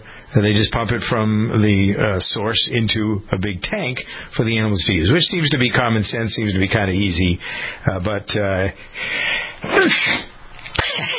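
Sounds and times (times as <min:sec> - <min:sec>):
speech: 0:00.3 - 0:10.3, 0:11.0 - 0:11.1
person sneezing: 0:09.6 - 0:11.1.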